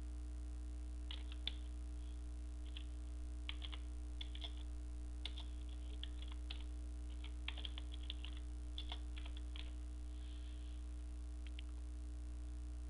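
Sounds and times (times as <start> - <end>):
steady low electrical hum: 0.0 - 12.8
keyboard typing on a computer: 1.1 - 1.7, 2.6 - 2.9, 3.5 - 9.8.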